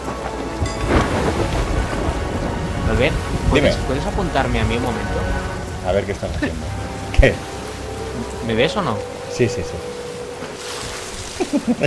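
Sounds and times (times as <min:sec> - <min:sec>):
low thunder rumble in a pirate video game: 0:00.0 - 0:09.3
loud steady rain hiss in a pirate video game: 0:00.0 - 0:11.8
speech: 0:02.9 - 0:07.5, 0:08.2 - 0:09.9, 0:11.5 - 0:11.8.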